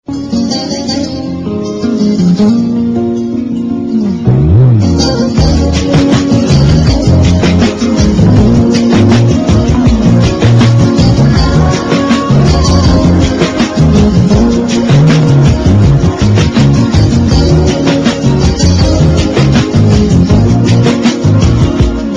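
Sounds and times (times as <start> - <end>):
Iranian guitar ringtone: 0.1 - 22.1.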